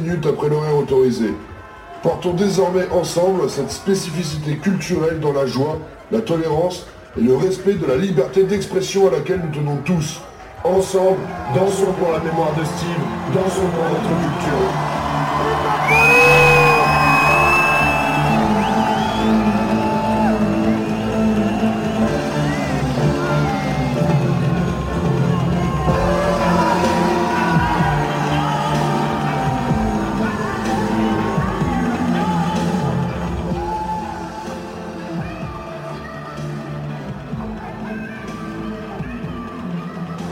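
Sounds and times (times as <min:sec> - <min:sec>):
crowd cheering outdoors at a techno parade free party: 0:00.0 - 0:08.5, 0:09.1 - 0:40.3
speech: 0:00.0 - 0:16.4
high whoops and shouts from crowd: 0:11.3 - 0:36.7.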